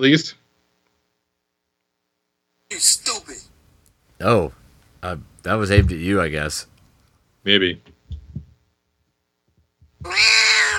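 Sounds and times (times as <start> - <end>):
speech: 0.0 - 0.4, 2.7 - 3.4, 4.2 - 6.7, 7.4 - 7.9
soft low thumps: 5.2 - 6.2, 8.0 - 8.6
cat meowing: 10.0 - 10.7.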